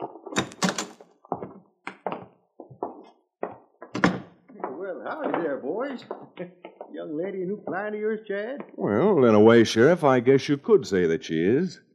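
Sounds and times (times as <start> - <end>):
door latch and frame clunking as a door opens: 3.9 - 4.3
speech: 4.8 - 11.8.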